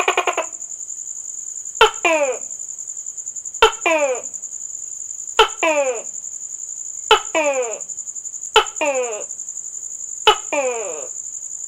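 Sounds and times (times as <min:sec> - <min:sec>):
gecko calls: 0:00.0 - 0:00.6, 0:01.8 - 0:02.6, 0:03.6 - 0:04.4, 0:05.4 - 0:06.2, 0:07.1 - 0:09.4, 0:10.2 - 0:11.2.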